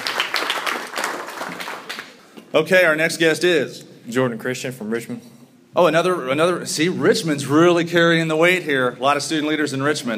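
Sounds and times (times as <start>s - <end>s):
audience applause: 0.0s - 2.2s
speech: 2.5s - 10.1s.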